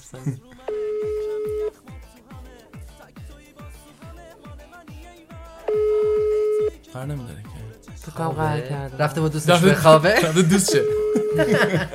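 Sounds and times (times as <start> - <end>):
laughter: 0.0 - 0.7, 9.8 - 11.9
speech: 0.1 - 0.6, 7.0 - 11.9
steady electronic ringback tone while placing a phone call: 0.7 - 1.7, 5.7 - 6.8, 10.7 - 11.9.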